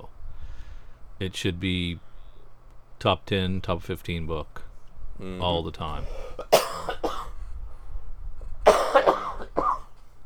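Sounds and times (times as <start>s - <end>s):
speech: 1.2s - 2.1s, 3.0s - 4.6s, 5.2s - 6.2s
sick man dry coughing: 6.0s - 7.4s, 8.6s - 10.0s.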